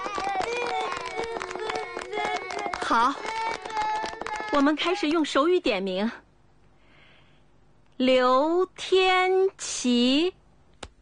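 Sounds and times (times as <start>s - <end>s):
overlapping children's voices and chatter: 0.0s - 5.0s
group of people clapping hands: 0.0s - 5.2s
speech: 2.9s - 3.4s, 4.5s - 6.2s, 8.0s - 10.4s.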